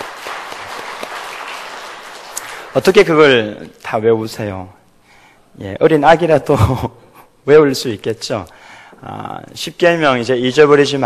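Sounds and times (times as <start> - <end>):
church congregation applause: 0.0 - 3.0
speech: 2.8 - 4.8, 5.6 - 11.0.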